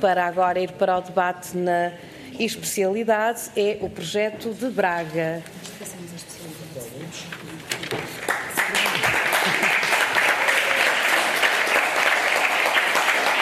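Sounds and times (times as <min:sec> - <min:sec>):
speech: 0:00.0 - 0:05.9
large group applauding in a debating chamber: 0:08.2 - 0:13.4.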